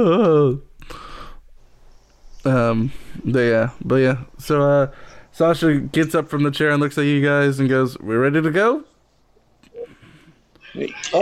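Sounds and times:
voice imitating a quiet wail of crying: 0.0 - 0.6
speech: 0.0 - 1.0, 2.4 - 8.9, 10.7 - 11.1.

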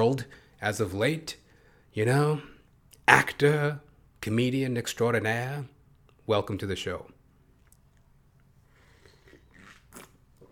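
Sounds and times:
speech: 0.0 - 1.4, 2.0 - 2.5, 3.1 - 5.7, 6.3 - 7.2
soft slurps and wet mouth clicks: 7.4 - 10.4
person sipping coffee: 7.5 - 10.4.

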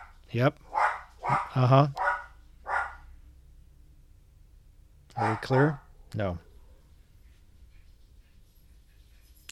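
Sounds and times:
dog barking: 0.0 - 3.1, 5.1 - 7.0
speech: 0.3 - 0.7, 1.3 - 2.0, 5.2 - 6.5.

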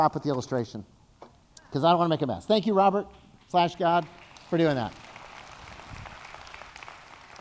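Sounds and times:
speech: 0.0 - 1.0, 1.7 - 5.0
audience applause with dense steady clapping from many hands: 4.0 - 7.3.

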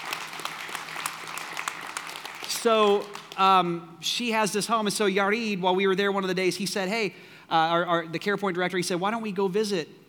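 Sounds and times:
church audience clapping: 0.0 - 3.5
speech: 2.6 - 10.0.

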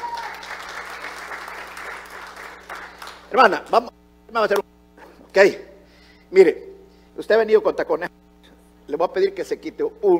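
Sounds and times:
audience applauding in a room: 0.0 - 3.3
speech: 3.3 - 4.7, 5.3 - 5.7, 6.3 - 8.2, 8.9 - 10.1.

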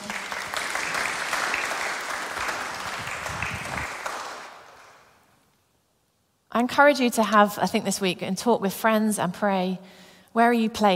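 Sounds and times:
audience applause: 0.0 - 5.1
speech: 6.6 - 10.9.

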